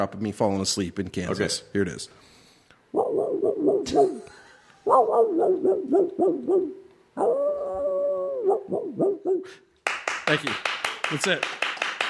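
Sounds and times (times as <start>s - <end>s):
speech: 0.0s - 2.3s, 3.9s - 7.7s, 8.4s - 9.7s, 10.3s - 11.6s
hound in Kansas baying with yodeling howls: 2.9s - 9.6s.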